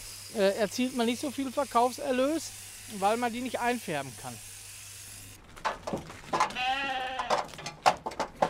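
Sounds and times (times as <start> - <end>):
speech: 0.3 - 4.5
knocks from sheep moving in a trailer: 5.6 - 6.6, 7.2 - 8.4
sheep bleating at trailer: 6.5 - 7.5.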